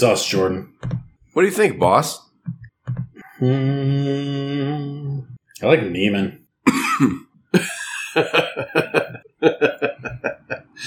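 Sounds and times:
speech: 0.0s - 2.3s, 3.4s - 9.8s
loud fit of coughing: 6.7s - 8.7s
laughter: 7.6s - 10.8s.

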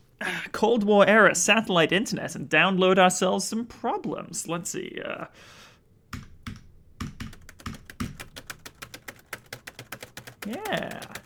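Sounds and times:
speech: 0.4s - 5.6s, 10.5s - 11.2s
rapid typing on a computer keyboard with both hands: 6.5s - 11.2s.

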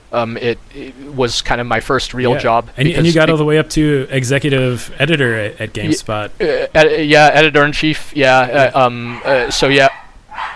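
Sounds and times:
quiet noise: 0.0s - 10.5s
speech: 0.1s - 10.0s
dog barking: 9.0s - 10.5s.

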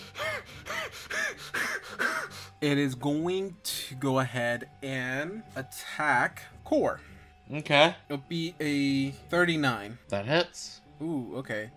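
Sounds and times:
person doing loud deliberate heavy breathing: 0.0s - 2.6s
speech: 2.6s - 11.7s.

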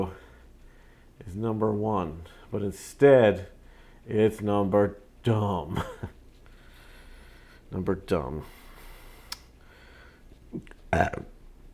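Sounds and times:
speech: 1.3s - 6.2s, 7.7s - 8.6s, 10.5s - 11.3s
quiet throaty sounds: 5.8s - 11.4s
loud burp: 10.6s - 11.4s.

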